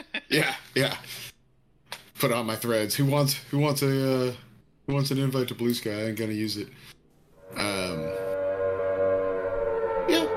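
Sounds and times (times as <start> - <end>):
speech: 0.3 - 1.3, 2.2 - 7.0
tornado warning siren wailing through a trailer park: 7.4 - 10.3.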